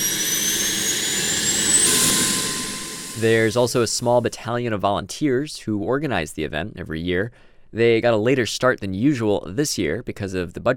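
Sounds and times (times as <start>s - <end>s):
C-130 military transport plane engines roaring: 0.0s - 3.8s
thin high-pitched whine: 0.0s - 4.4s
speech: 3.2s - 10.7s.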